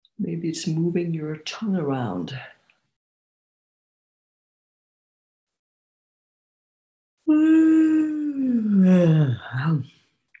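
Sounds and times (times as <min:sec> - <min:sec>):
speech: 0:00.2 - 0:02.6, 0:07.3 - 0:10.0
drawn-out voiced yawn: 0:07.3 - 0:09.4.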